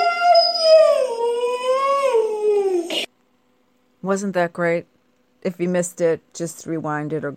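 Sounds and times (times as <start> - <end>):
Siberian Husky howling: 0.0 - 3.1
speech: 4.0 - 7.3.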